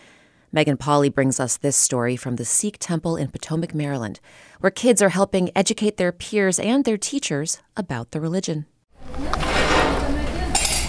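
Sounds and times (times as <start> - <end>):
speech: 0.5 - 9.5
utensils and dishes clinking in a busy kitchen: 9.3 - 10.8.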